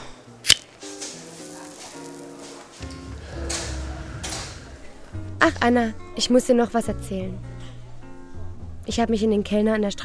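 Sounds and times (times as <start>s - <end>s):
chair scraping: 1.4s - 5.0s
speech: 5.4s - 7.5s, 8.9s - 10.0s.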